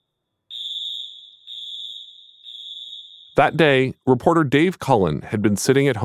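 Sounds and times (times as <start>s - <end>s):
school fire alarm blaring in long electronic pulses: 0.5s - 3.5s
speech: 3.4s - 6.0s.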